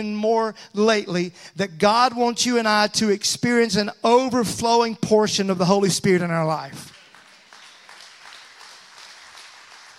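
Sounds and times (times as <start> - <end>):
speech: 0.0 - 6.9
audience clapping: 6.9 - 9.9.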